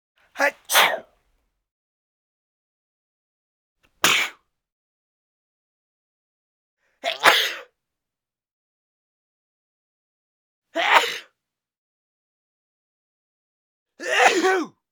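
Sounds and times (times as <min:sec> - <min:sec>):
man sneezing: 0:00.6 - 0:01.1, 0:04.0 - 0:04.4, 0:07.0 - 0:07.7, 0:10.8 - 0:11.3, 0:14.0 - 0:14.7.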